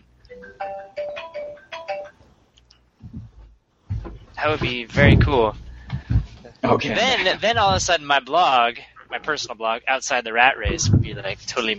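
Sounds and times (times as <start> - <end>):
mobile phone ringing with a bright electronic ringtone: 0.3 - 2.2
soft low rustling: 3.0 - 8.0, 10.6 - 11.7
speech: 4.4 - 5.6, 6.6 - 11.7.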